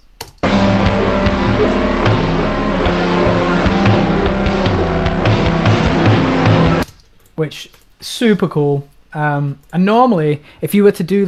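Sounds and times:
slow regular bass thumps: 0.4s - 6.8s
music track played back at half speed: 0.4s - 6.9s
speech: 7.4s - 11.2s.

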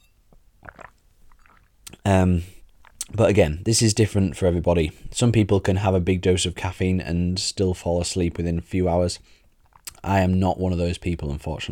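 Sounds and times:
person sipping and swallowing a drink: 0.3s - 3.1s, 9.5s - 10.0s
speech: 2.1s - 2.6s, 3.2s - 11.7s.

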